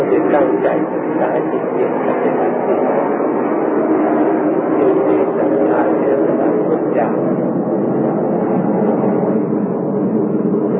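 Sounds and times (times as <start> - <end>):
airplane flying overhead with low rumbling roar: 0.0 - 10.7.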